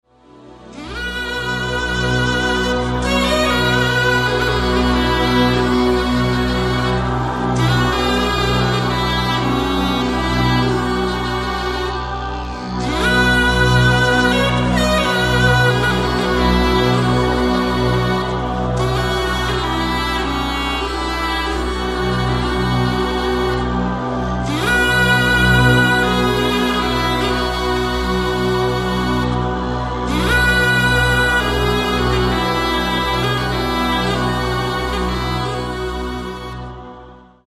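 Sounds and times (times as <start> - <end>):
wooden soprano saxophone: 0.4 - 37.4.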